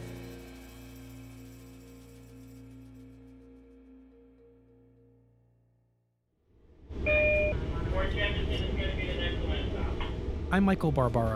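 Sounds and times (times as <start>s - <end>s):
low droning hum inside a moving commuter train: 7.0s - 11.3s
speech: 10.6s - 11.3s.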